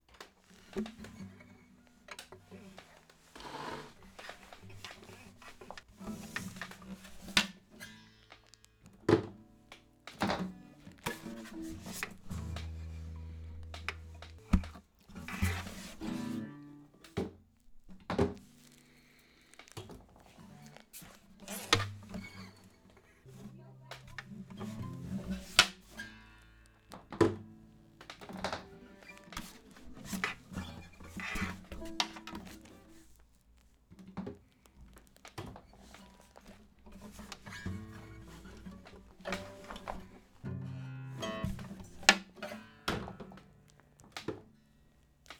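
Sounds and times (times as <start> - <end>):
instrumental guitar check: 0.7 - 3.3, 3.9 - 19.5, 20.2 - 33.2, 36.0 - 45.0.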